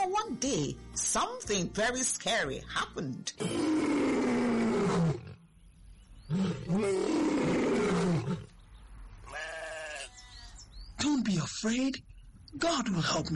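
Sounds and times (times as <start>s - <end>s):
speech: 0.4s - 3.9s, 6.3s - 7.2s, 11.6s - 13.3s
lion roaring: 3.4s - 5.4s, 6.3s - 8.5s.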